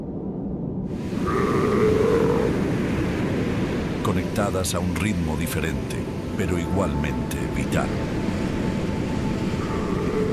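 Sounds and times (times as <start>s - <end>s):
rushing wash of wind and water in the Southern Ocean: 0.0s - 10.3s
Antarctic seal bleating call: 1.2s - 2.5s, 9.6s - 10.3s
speech: 4.1s - 8.3s.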